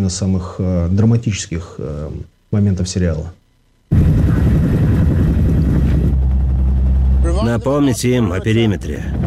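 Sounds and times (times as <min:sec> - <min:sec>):
speech: 0:00.0 - 0:03.4, 0:07.4 - 0:09.2
helicopter rotor roaring: 0:03.9 - 0:09.2.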